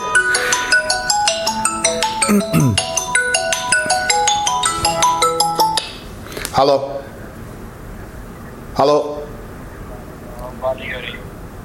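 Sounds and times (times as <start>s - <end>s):
mobile phone ringtone with electronic melody: 0.0s - 5.8s
speech: 2.3s - 2.9s, 6.6s - 7.0s, 8.8s - 9.2s.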